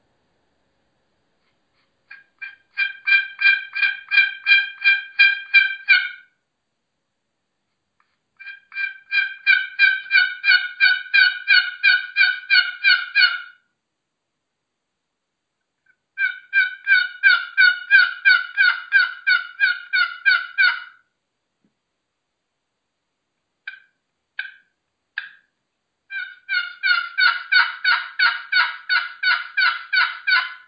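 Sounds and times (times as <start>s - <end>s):
turkey yelping made on a one-sided box call: 2.1s - 6.3s, 8.4s - 13.6s, 16.2s - 21.0s, 23.6s - 25.5s, 26.1s - 30.6s.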